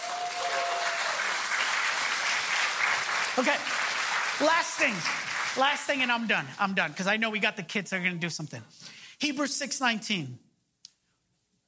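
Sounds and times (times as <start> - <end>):
large crowd applauding: 0.0 - 6.4
speech: 3.4 - 3.8, 4.4 - 10.5.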